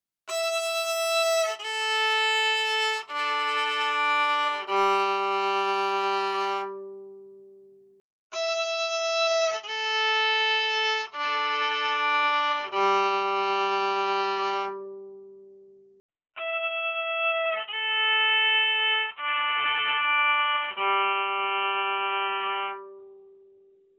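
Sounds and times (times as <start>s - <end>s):
violin: 0.3s - 7.6s, 8.3s - 15.6s, 16.4s - 23.4s.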